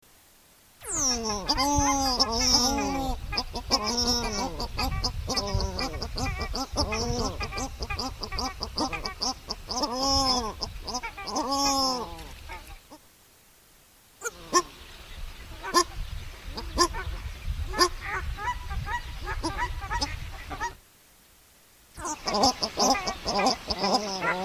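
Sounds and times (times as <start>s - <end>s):
paradise shelduck calling: 0.8s - 13.0s, 14.2s - 14.8s, 16.6s - 20.8s, 22.0s - 24.4s.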